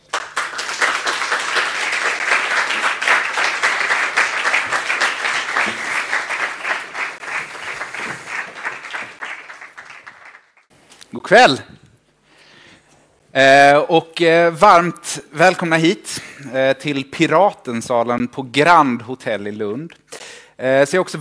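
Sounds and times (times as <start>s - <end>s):
room full of people applauding: 0.0s - 10.7s
speech: 11.3s - 11.7s, 13.4s - 20.0s, 20.6s - 21.1s.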